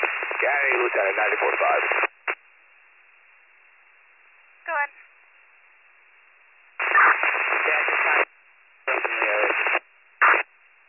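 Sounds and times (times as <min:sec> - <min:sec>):
crackling radio transmission static: 0:00.0 - 0:02.4, 0:06.8 - 0:08.3, 0:08.9 - 0:10.5
speech: 0:00.4 - 0:02.1.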